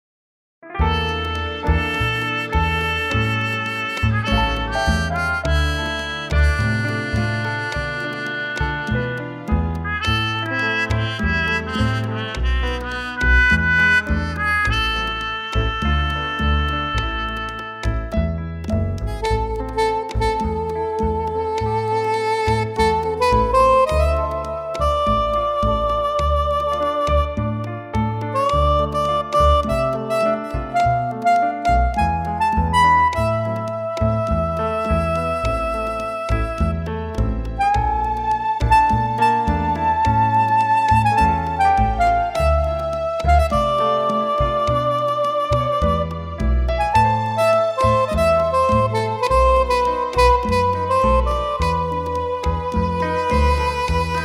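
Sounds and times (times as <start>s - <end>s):
soprano saxophone: 0.8s - 18.2s, 18.9s - 54.2s.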